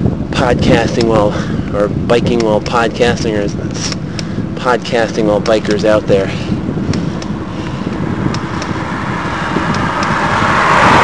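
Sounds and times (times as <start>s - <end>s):
broadband wind-like roar: 0.0s - 11.0s
speech: 0.4s - 4.0s, 4.6s - 6.5s
car passing on road: 6.3s - 11.0s.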